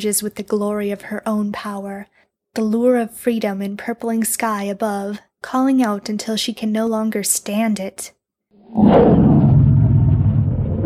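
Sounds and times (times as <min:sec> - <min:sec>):
speech: 0:00.0 - 0:09.3
female dragon roaring: 0:08.7 - 0:10.8
low rumbling: 0:08.7 - 0:10.8.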